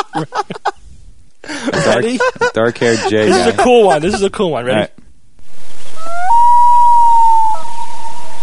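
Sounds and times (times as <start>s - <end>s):
laughter: 0.0s - 0.8s, 1.5s - 4.4s
speech: 0.2s - 0.5s, 1.7s - 5.0s
common loon wailing call: 6.0s - 8.4s.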